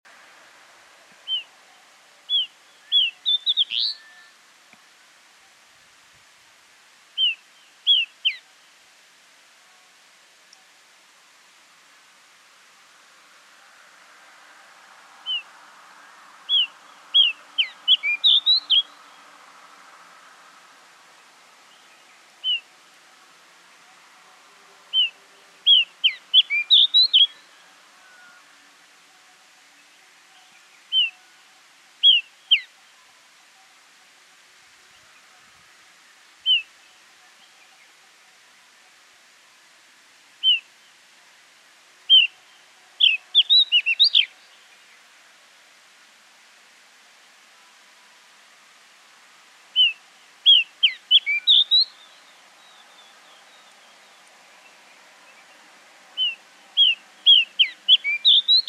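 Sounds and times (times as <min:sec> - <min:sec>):
bushchat calling: 0:01.2 - 0:04.4, 0:07.2 - 0:08.5, 0:15.2 - 0:15.5, 0:16.5 - 0:19.3, 0:21.7 - 0:22.8, 0:24.9 - 0:28.5, 0:30.3 - 0:31.3, 0:32.0 - 0:32.9, 0:36.4 - 0:37.8, 0:40.4 - 0:40.7, 0:42.1 - 0:44.9, 0:49.7 - 0:55.6, 0:56.2 - 0:58.6.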